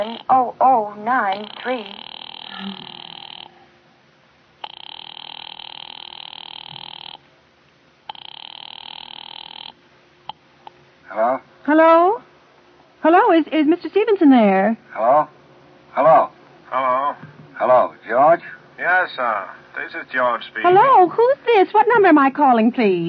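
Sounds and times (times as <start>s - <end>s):
telephone ringing down a line: 0.0s - 0.4s, 1.1s - 3.6s, 4.6s - 7.2s, 8.1s - 9.8s
speech: 0.0s - 2.0s, 2.6s - 3.0s, 11.7s - 12.3s, 13.0s - 15.4s, 16.0s - 23.0s
brief warbling wavering telephone line tone: 1.1s - 3.7s.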